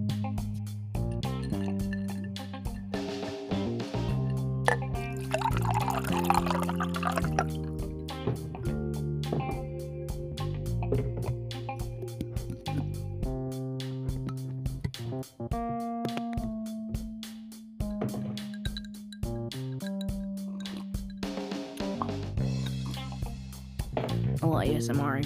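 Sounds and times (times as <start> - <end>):
rhythmic music track: 0.2 - 25.2
water pouring into a glass: 1.4 - 2.3, 4.7 - 7.9
speech: 24.8 - 25.2.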